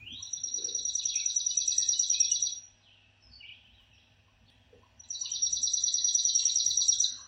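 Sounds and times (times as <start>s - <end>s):
Chipping Sparrow: 0.0s - 7.2s.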